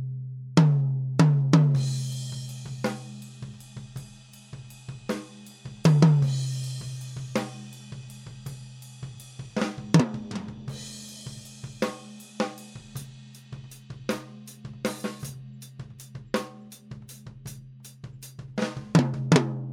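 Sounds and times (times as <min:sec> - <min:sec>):
tom drum recorded with 58 microphone: 0:00.6 - 0:19.7.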